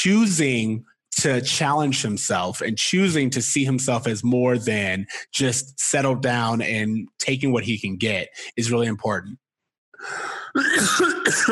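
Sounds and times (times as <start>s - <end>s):
speech: 0.0s - 9.4s, 10.0s - 11.4s
harsh raspy coughing: 10.5s - 11.4s.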